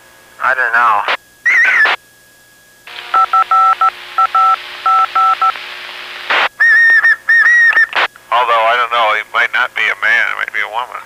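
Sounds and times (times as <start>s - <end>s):
steady radio hiss: 0.4s - 2.0s, 4.0s - 11.0s
speech: 0.5s - 1.2s, 9.7s - 11.0s
person whistling through a radio channel: 1.4s - 2.0s, 6.5s - 8.1s.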